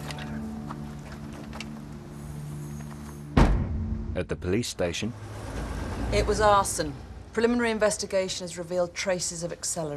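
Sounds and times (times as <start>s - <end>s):
vehicle rear door slamming shut: 3.4s - 3.9s
speech: 4.2s - 5.4s, 6.1s - 9.9s.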